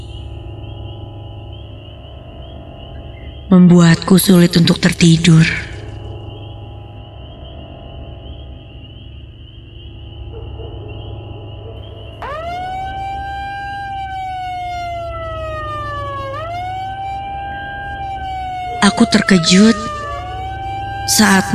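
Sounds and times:
loud wailing alarm blaring from a horn loudspeaker: 0.0 - 6.7, 11.9 - 21.5
steady hum: 0.0 - 21.5
speech: 3.5 - 5.7, 19.1 - 20.0, 21.1 - 21.5.

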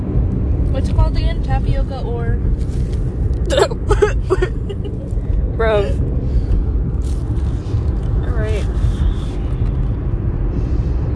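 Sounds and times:
car engine drone in a moving car cabin: 0.0 - 11.1
road rumble in a moving car cabin: 0.0 - 11.1
speech: 0.8 - 6.0.

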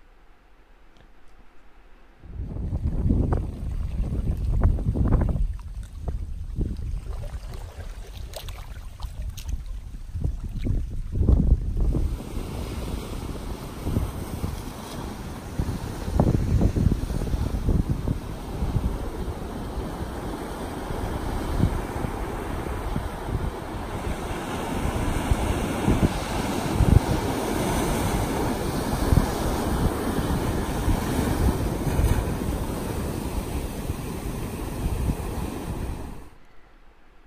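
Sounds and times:
steady wind buffeting the microphone: 2.2 - 36.4
ocean waves breaking on a rocky beach at sunset: 11.4 - 36.4.

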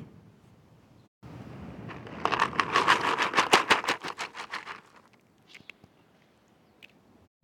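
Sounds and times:
cat food rustling in its packaging: 1.9 - 5.1.

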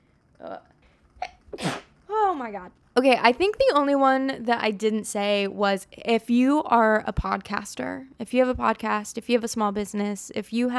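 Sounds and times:
person sneezing: 1.2 - 1.9
speech: 2.4 - 10.7.

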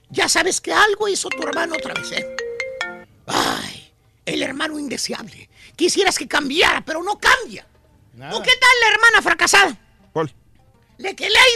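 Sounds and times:
speech: 0.1 - 2.4, 4.3 - 10.4, 11.0 - 11.5
cell phone ringtone with short electronic melody: 1.3 - 3.1.

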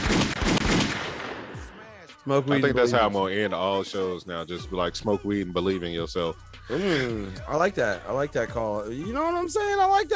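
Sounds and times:
gunshot sound effect played by DJ: 0.0 - 1.9
speech: 2.3 - 10.1.

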